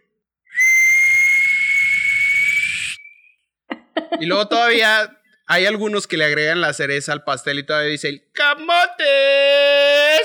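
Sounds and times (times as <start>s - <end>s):
person imitating steam whistle of sweet potato vendor's aluminium cart: 0.5s - 3.1s
laughter: 3.7s - 4.4s
speech: 4.0s - 10.2s.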